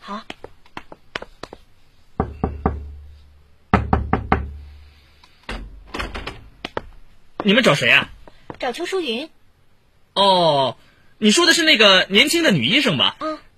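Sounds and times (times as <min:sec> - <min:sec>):
speech: 0:00.1 - 0:00.4, 0:07.4 - 0:09.4, 0:10.2 - 0:13.3
firm knocking on a door: 0:02.2 - 0:03.0, 0:03.7 - 0:04.7.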